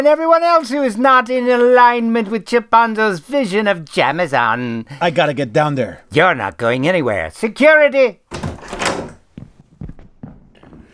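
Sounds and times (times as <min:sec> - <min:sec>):
speech: 0:00.0 - 0:08.4
door swinging open with a brief rushing whoosh: 0:08.3 - 0:09.3.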